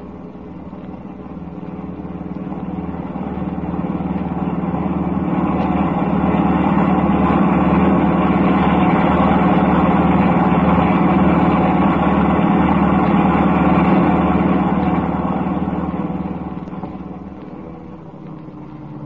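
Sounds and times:
car engine running while driving: 0.0 - 19.0.

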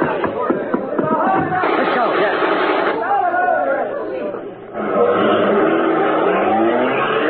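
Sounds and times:
crowd chatter of overlapping voices: 0.0 - 7.2
car engine revving and pulling away: 4.8 - 7.2.

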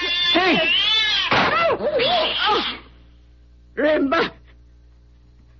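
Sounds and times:
angry attacking cat yowling and caterwauling: 0.0 - 2.8
speech: 0.5 - 0.8, 3.8 - 4.4.

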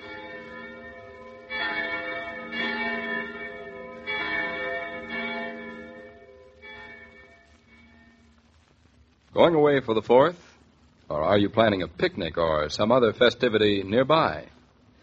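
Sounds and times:
church bells ringing in a peal: 0.0 - 8.3
speech: 9.4 - 10.5, 11.1 - 14.5.

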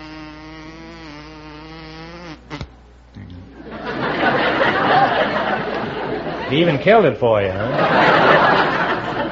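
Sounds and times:
voice imitating a buzzing bumblebee: 0.0 - 3.6
audience laughter: 3.6 - 9.3
speech: 6.5 - 8.8.

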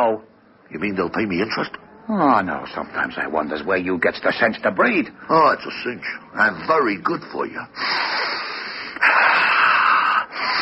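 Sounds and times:
speech: 0.0 - 8.3
steady hiss: 0.0 - 10.5
heavy raspy wheezing breath: 7.8 - 10.5.

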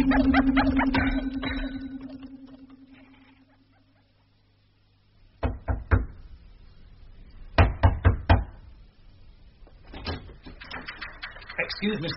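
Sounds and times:
speech: 0.0 - 1.5, 11.8 - 12.1
low rumbling hum: 0.0 - 3.9
sharp raps on a door: 5.4 - 6.1, 7.6 - 8.5.

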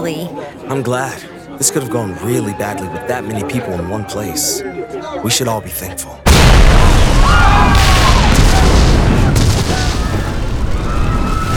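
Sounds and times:
speech: 0.0 - 7.7
crackling debris noise: 6.3 - 11.5
loud deep explosion with concussion wave: 6.3 - 11.5.

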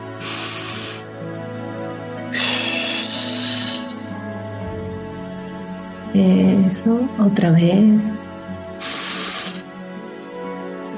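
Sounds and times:
deep slow wave-like breathing: 0.0 - 1.4, 2.1 - 5.6, 8.8 - 9.7
speech: 6.2 - 8.9.

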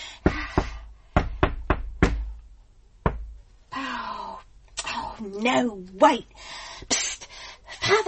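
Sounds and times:
rhythmic secret knock on a door: 0.2 - 2.4, 3.0 - 3.5
speech: 5.2 - 7.0, 7.9 - 8.0.

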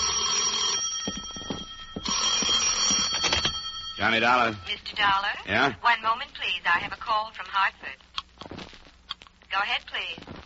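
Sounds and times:
telephone ringing with a rapid bell trill: 0.0 - 5.1
speech: 4.0 - 8.0, 9.5 - 10.4.

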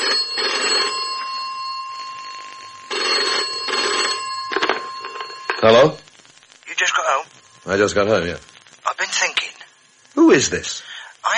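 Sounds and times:
telephone ringing: 0.0 - 8.4
speech: 5.6 - 6.0, 7.7 - 8.5, 10.3 - 10.9.

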